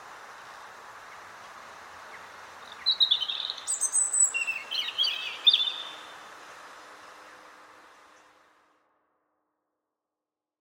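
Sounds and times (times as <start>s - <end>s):
quiet background hiss: 0.0s - 8.7s
European robin Erithacus rubecula singing: 2.1s - 6.2s.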